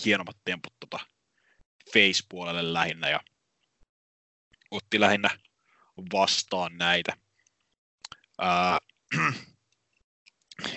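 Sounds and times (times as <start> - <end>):
speech: 0.0 - 1.1, 1.9 - 3.3, 4.7 - 7.2, 8.4 - 9.5, 10.6 - 10.7
throat clearing: 8.6 - 9.6, 10.6 - 10.7
rough throaty coughs: 9.1 - 9.5, 10.6 - 10.7.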